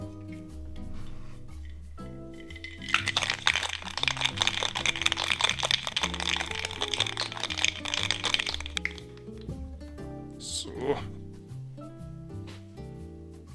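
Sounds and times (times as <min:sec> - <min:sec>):
soft music: 0:00.0 - 0:13.5
ice rattling in a cocktail shaker shaken hard: 0:02.4 - 0:09.4.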